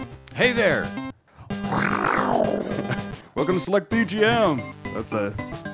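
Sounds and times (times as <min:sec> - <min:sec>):
speech: 0:00.4 - 0:01.0, 0:03.4 - 0:05.5
tiger's low rumbling purr-growl: 0:01.5 - 0:03.3.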